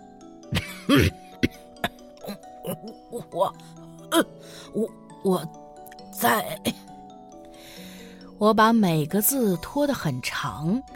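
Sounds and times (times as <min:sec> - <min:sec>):
person fake coughing to pretend to have a cold: 0:00.5 - 0:04.3, 0:06.5 - 0:06.8
speech: 0:00.9 - 0:01.2, 0:03.4 - 0:05.6, 0:06.2 - 0:06.8, 0:08.4 - 0:10.9.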